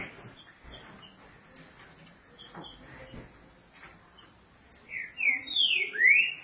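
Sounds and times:
green-winged saltator singing bright whistled phrases: 4.9s - 6.4s.

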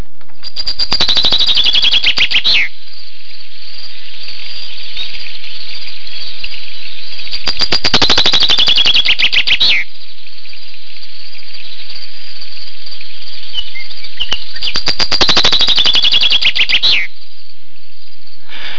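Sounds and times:
steady hiss: 0.0s - 18.7s
finch singing in a song-counting contest: 0.4s - 2.7s, 3.4s - 10.8s, 12.9s - 17.2s.

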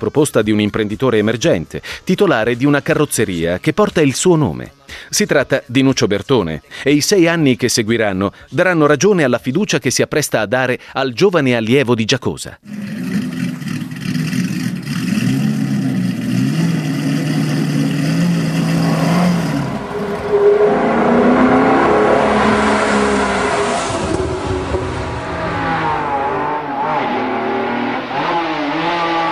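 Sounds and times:
speech: 0.0s - 13.2s
1961 Aston Martin DB4 GT and Maserati 5000 GT engines roaring and revving: 12.6s - 29.3s.

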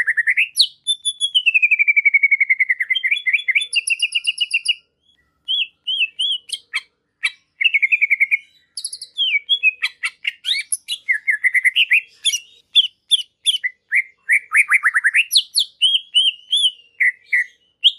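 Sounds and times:
greater green leafbird song: 0.0s - 17.9s.

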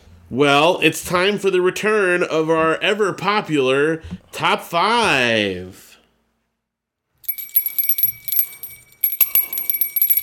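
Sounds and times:
speech: 0.3s - 5.9s
small bells jingling: 7.2s - 10.2s.

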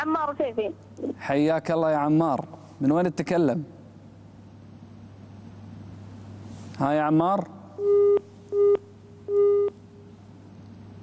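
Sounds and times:
speech: 0.0s - 3.8s, 6.8s - 8.8s
busy tone beeps after a dropped phone-in call: 7.8s - 9.8s.

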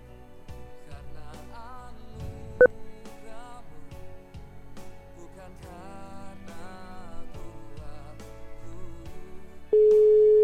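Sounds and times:
faint music: 0.0s - 10.4s
steady tone: 1.9s - 4.8s.

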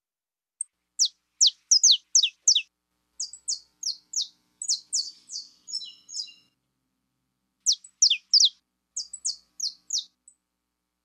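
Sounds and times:
pure-bred Belgian canary singing: 0.6s - 6.6s, 7.6s - 10.3s.

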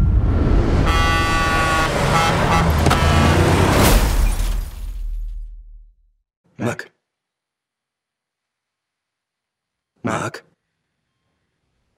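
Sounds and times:
steady road rumble on a country highway: 0.0s - 5.4s
car horn blaring on a country highway: 0.8s - 3.7s
car colliding with a large truck, loud crash with shattering: 2.7s - 5.6s.

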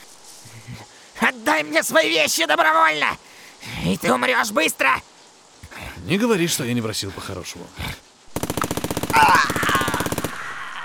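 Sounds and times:
speech: 0.5s - 5.1s, 6.0s - 8.0s
automatic gunfire burst echoing through an autumn forest: 8.3s - 10.4s.

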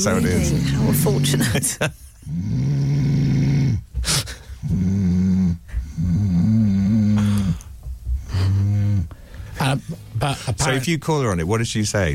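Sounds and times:
speech: 0.0s - 2.7s, 10.5s - 12.1s
loud deep snoring with guttural growl: 0.1s - 1.6s, 2.2s - 3.9s, 4.6s - 7.6s, 8.2s - 9.1s.

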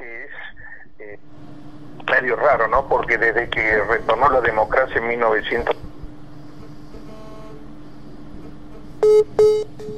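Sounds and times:
low hum: 0.0s - 9.9s
speech: 2.1s - 5.9s
telephone dialing beeps reconnecting a dropped call: 9.0s - 9.9s.

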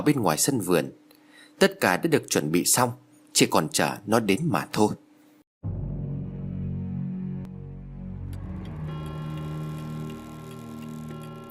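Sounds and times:
speech: 0.0s - 1.0s, 1.6s - 5.0s
low sustained eerie drone: 5.7s - 11.4s
pendulum clock ticking in the silent night: 8.4s - 11.4s.

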